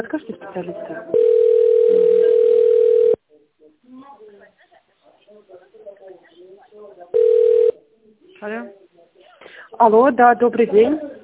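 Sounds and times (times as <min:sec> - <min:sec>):
speech: 0:00.0 - 0:02.2, 0:08.4 - 0:08.8, 0:09.8 - 0:11.1
steady telephone tone during a call transfer: 0:01.1 - 0:03.2, 0:07.2 - 0:07.8.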